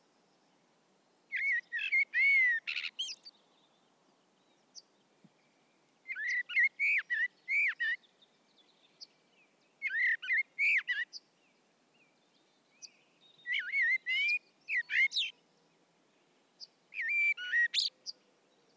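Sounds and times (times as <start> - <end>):
faint steady hiss: 0.0 - 18.7
Common blackbird Turdus merula singing fluted phrases: 1.3 - 3.4, 6.1 - 8.1, 9.8 - 11.2, 12.7 - 15.4, 16.9 - 18.2.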